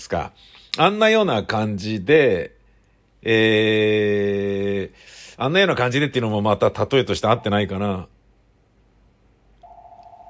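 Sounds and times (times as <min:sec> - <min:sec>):
speech: 0:00.0 - 0:02.6, 0:03.2 - 0:08.2
telephone ringing with a steady electronic tone: 0:09.6 - 0:10.2.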